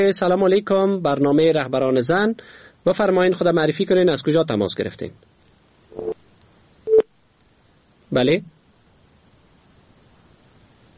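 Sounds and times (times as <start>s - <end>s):
speech: 0.0s - 5.3s, 6.0s - 6.2s, 8.1s - 8.6s
telephone tones after a caller's line drops during a phone-in: 5.9s - 6.2s, 6.9s - 7.1s.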